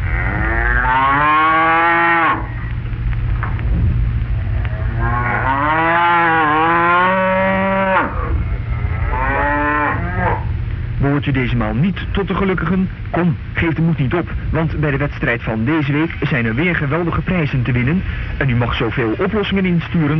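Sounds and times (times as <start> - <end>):
cows mooing: 0.0 - 2.7, 4.4 - 10.6
low rumble: 0.0 - 20.1
speech: 11.8 - 20.1.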